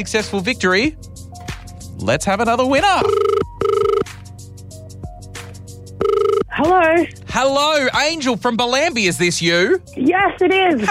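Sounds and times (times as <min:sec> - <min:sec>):
speech: 0:00.0 - 0:01.2, 0:02.0 - 0:03.3, 0:06.6 - 0:10.8
phone line ringing tone on an outgoing call: 0:03.0 - 0:04.1, 0:06.0 - 0:06.5.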